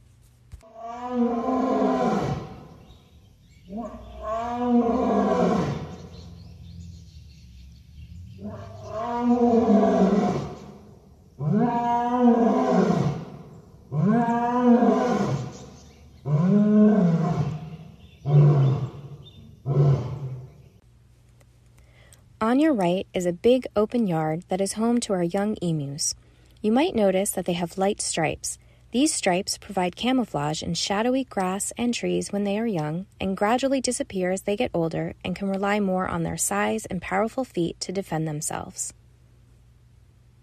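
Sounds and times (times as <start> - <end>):
lion roaring and grunting: 0.8 - 2.8, 3.7 - 6.0, 8.4 - 10.7, 11.4 - 20.5
speech: 22.6 - 39.0.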